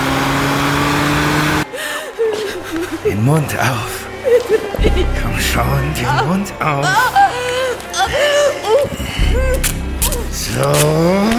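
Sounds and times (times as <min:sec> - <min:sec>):
car engine accelerating hard with gas pedal floored on a motorway: 0:00.0 - 0:01.7
laughter: 0:01.7 - 0:11.3
speech: 0:03.2 - 0:07.4, 0:08.1 - 0:11.3.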